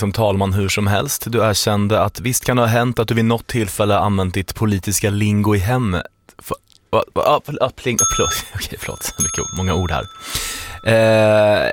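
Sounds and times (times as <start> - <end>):
speech: 0.0 - 11.7
small bell dinging: 8.0 - 11.7.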